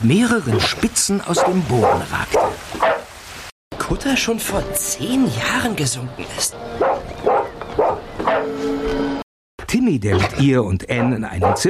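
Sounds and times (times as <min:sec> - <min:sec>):
speech: 0:00.0 - 0:02.9, 0:03.9 - 0:07.3, 0:09.8 - 0:11.6
dog barking loudly: 0:01.4 - 0:03.1, 0:06.8 - 0:08.5, 0:11.0 - 0:11.6.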